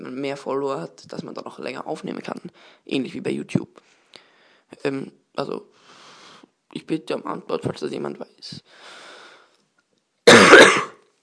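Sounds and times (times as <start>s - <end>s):
speech: 0.1s - 4.0s, 4.7s - 6.0s, 6.7s - 9.0s
single harsh cough: 10.3s - 11.0s
throat clearing: 10.3s - 11.0s.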